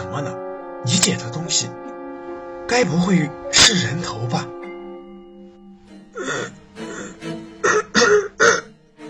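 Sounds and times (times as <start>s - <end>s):
speech: 0.1s - 0.4s, 1.1s - 1.9s, 2.7s - 4.6s
person coughing outside a door: 7.7s - 8.7s.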